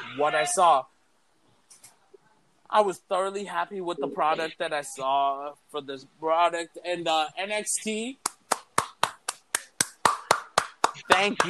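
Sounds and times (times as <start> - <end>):
speech: 0.2 - 0.9, 2.7 - 8.3, 11.2 - 11.4
single person clapping hands: 8.2 - 11.4.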